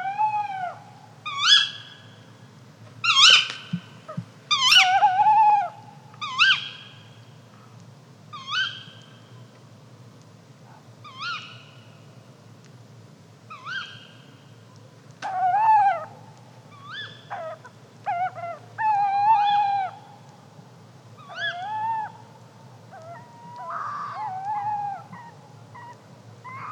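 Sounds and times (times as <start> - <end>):
tawny owl giving upward-hooked and harsh calls: 0.0 - 2.2, 3.0 - 7.1, 8.3 - 9.2, 11.0 - 11.9, 13.5 - 14.4, 15.2 - 20.3, 21.2 - 26.7.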